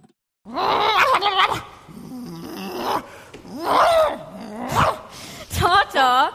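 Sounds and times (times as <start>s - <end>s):
dog growling and barking: 0.5s - 5.1s.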